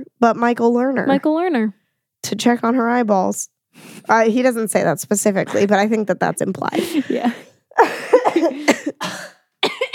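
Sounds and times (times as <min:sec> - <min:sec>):
speech: 0:00.2 - 0:07.4
person coughing harshly: 0:06.8 - 0:09.9.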